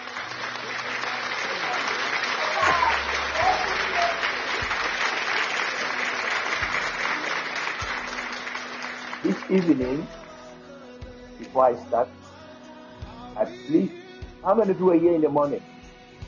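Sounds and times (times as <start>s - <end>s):
audience clapping in praise: 0.0s - 10.4s
speech: 9.5s - 10.2s, 11.6s - 12.2s, 13.4s - 15.6s.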